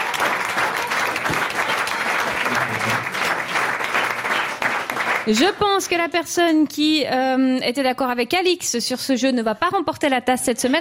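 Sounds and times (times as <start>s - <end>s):
small group applauding: 0.0s - 5.7s
speech: 5.3s - 10.7s.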